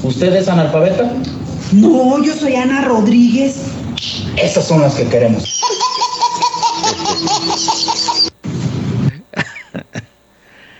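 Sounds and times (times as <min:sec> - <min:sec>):
speech: 0:00.1 - 0:05.7
hearty group laughter: 0:05.5 - 0:08.3, 0:09.1 - 0:10.2.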